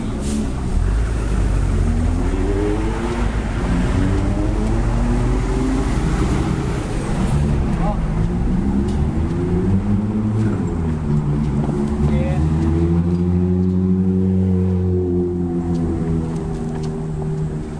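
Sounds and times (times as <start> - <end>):
Nissan S15 sports car accelerating hard past: 0.2 - 17.7.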